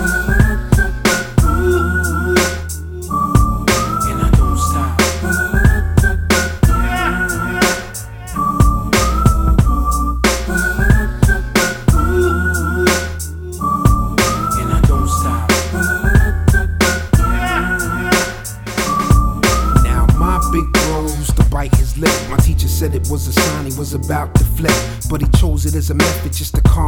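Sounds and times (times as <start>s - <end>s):
steady drum beat: 0.0s - 1.8s, 3.4s - 7.0s, 8.6s - 12.2s, 13.9s - 17.5s, 18.1s - 23.8s, 24.4s - 26.8s
bass: 0.0s - 26.8s
person whistling a bright melody: 0.0s - 26.8s.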